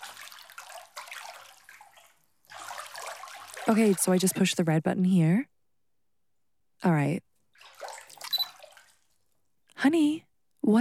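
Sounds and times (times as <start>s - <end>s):
water splashing and sloshing in a small bath while bathing an infant: 0.0s - 4.7s, 7.5s - 9.4s
speech: 3.7s - 5.5s, 6.8s - 7.3s, 9.8s - 10.7s.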